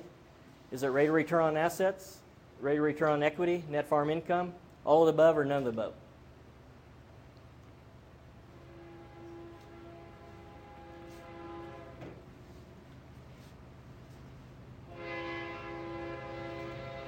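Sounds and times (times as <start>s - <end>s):
speech: 0.7s - 6.0s
train rolling cars rumbling past in Torrington: 8.3s - 17.0s
train horn long blasts: 8.4s - 12.6s, 14.8s - 17.0s.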